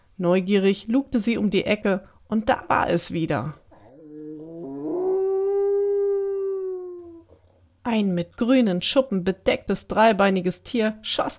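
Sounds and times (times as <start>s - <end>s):
speech: 0.2s - 3.6s, 7.9s - 11.3s
long drawn-out eerie howl: 3.9s - 7.4s.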